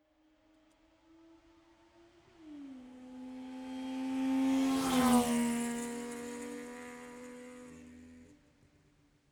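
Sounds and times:
car passing by from right to left, exterior: 3.2s - 8.4s.

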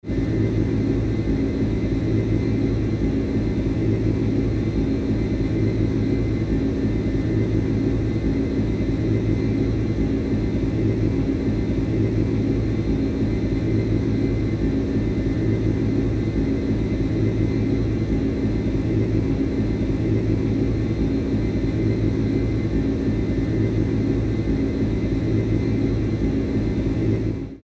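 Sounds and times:
jet interior noise: 0.1s - 27.6s.

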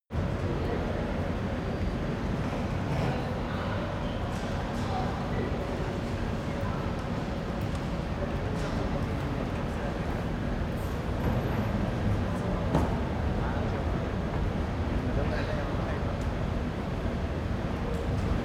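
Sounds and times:
train station ventilation noise: 0.2s - 18.4s.

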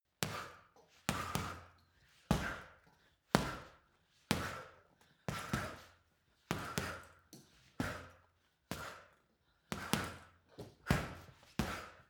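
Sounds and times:
boxing punching bag being punched: 0.2s - 1.7s, 2.3s - 2.7s, 3.4s - 4.7s, 5.3s - 5.9s, 6.5s - 7.1s, 7.8s - 9.0s, 9.8s - 10.3s, 10.9s - 12.0s.

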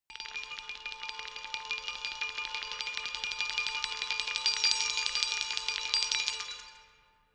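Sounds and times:
low mysterious glockenspiel tremolo: 0.2s - 6.8s.

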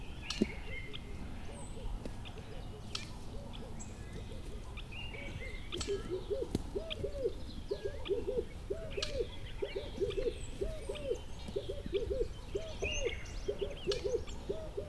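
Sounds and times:
faint high bird chirps and twitters: 0.2s - 14.8s
bird hooting call: 3.3s - 14.8s.

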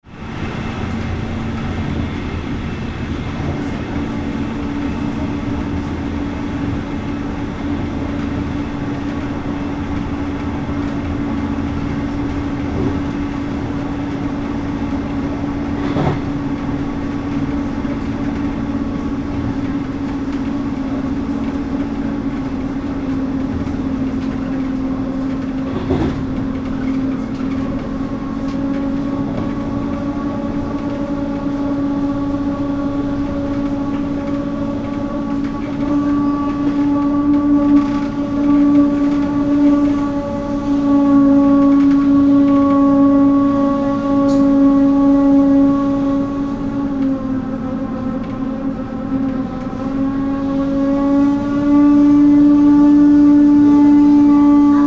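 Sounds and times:
regional train braking heard inside cabin: 0.2s - 54.8s.

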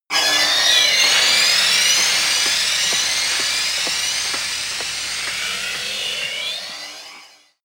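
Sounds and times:
high techno beat: 1.0s - 6.4s.

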